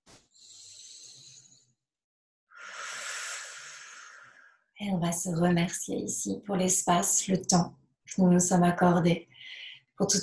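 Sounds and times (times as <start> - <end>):
deep breath in and out during a breathing exercise: 0.3 - 1.8, 2.5 - 4.7, 9.3 - 10.0
speech: 4.8 - 9.3, 10.0 - 10.2.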